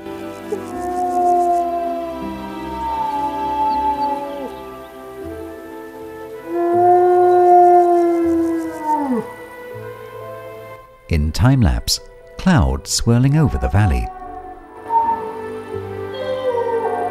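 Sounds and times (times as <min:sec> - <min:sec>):
wolf howling: 0:00.5 - 0:09.7, 0:13.4 - 0:17.0
speech: 0:11.4 - 0:14.2.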